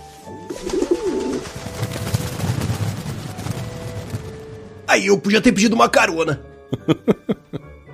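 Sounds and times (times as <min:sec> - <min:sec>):
pigeon flock wings flapping and clattering on takeoff: 0:00.3 - 0:04.8
pigeons cooing: 0:00.5 - 0:01.6
speech: 0:04.9 - 0:07.4
laughter: 0:06.7 - 0:07.7.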